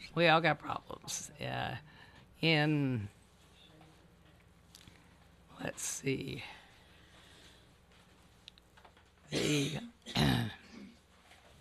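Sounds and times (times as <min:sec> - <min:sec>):
speech: 0:00.2 - 0:03.2, 0:05.6 - 0:06.6, 0:09.3 - 0:10.6
throat clearing from a dry throat: 0:09.3 - 0:11.0.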